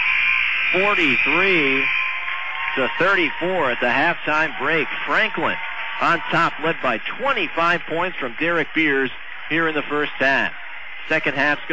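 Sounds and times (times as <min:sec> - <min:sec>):
basketball game buzzer ending the half: 0:00.0 - 0:03.3
speech: 0:00.7 - 0:02.0, 0:02.8 - 0:11.7.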